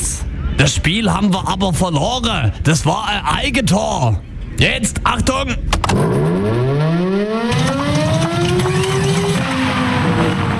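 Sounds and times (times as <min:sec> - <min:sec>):
steady rumbling noise: 0:00.0 - 0:10.5
speech: 0:00.6 - 0:06.6
mechanical siren winding up and sputtering: 0:05.9 - 0:10.5.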